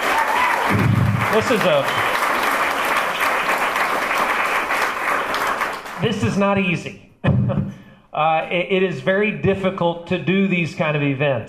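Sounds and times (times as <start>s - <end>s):
audience applauding for a party chairman: 0.0s - 6.4s
speech: 0.7s - 2.1s, 6.0s - 7.6s, 8.2s - 11.4s.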